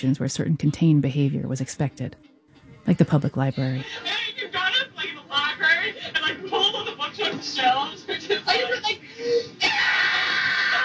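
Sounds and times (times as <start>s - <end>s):
speech: 0.0s - 4.5s
laughter: 3.8s - 10.8s
girl screaming on old tape recording: 9.6s - 10.8s.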